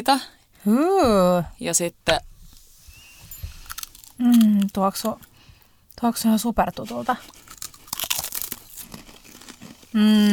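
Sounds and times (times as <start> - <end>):
speech: 0.0 - 2.3, 4.2 - 5.3, 6.0 - 7.4, 10.0 - 10.3
crinkly chewing: 3.4 - 5.7, 6.6 - 10.3
crunchy bites into a snack: 3.6 - 5.3, 7.2 - 10.3.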